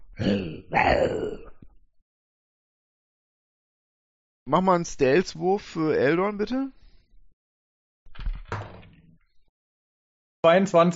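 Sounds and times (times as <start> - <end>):
man's voice imitating an owlbear's growl: 0.1 - 1.6
speech: 4.5 - 6.8, 10.4 - 10.9.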